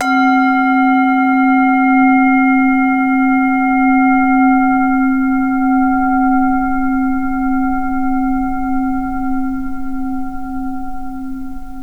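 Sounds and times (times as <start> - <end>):
zen prayer bowl: 0.0 - 11.8.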